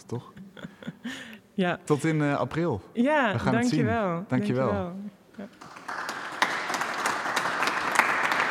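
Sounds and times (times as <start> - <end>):
speech: 0.0 - 0.4, 1.0 - 5.7
audience applause in a church: 5.6 - 8.4.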